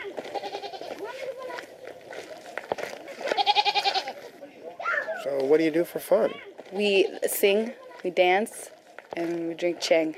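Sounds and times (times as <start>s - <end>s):
goats bleating: 0.0s - 1.6s, 3.0s - 4.4s, 6.3s - 8.0s
speech: 5.4s - 10.1s.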